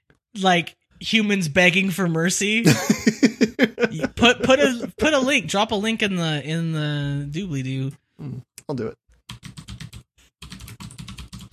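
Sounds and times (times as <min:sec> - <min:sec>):
speech: 0:00.4 - 0:09.6
laughter: 0:02.6 - 0:05.0
rapid typing on a loud computer keyboard: 0:09.3 - 0:11.5.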